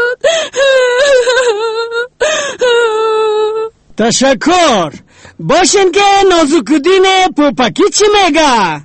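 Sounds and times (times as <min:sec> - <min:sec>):
person crying tears of joy: 0:00.0 - 0:03.8
speech: 0:04.0 - 0:08.8.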